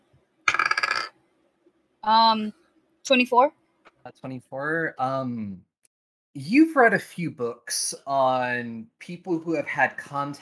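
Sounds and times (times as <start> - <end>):
dice tumbling across a hard tabletop: 0.5 - 1.2
speech: 2.0 - 5.7, 6.4 - 10.4.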